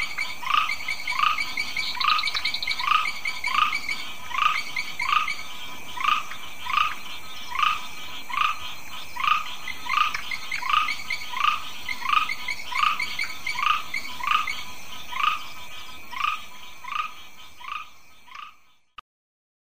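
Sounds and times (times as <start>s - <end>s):
Ptychadena trinodis grass frog calling in pulsed notes: 0.0s - 15.5s.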